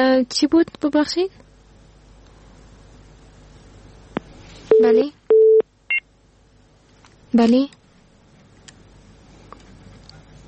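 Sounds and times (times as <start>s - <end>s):
speech: 0.0s - 1.4s, 4.8s - 5.2s, 7.3s - 7.8s
telephone beeps after a call-in caller is disconnected: 4.7s - 6.0s.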